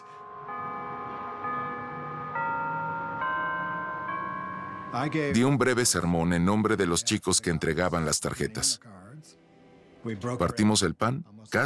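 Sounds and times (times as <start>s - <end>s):
church bells ringing a slow hymn melody: 0.0s - 5.4s
speech: 4.9s - 9.4s, 10.0s - 11.6s.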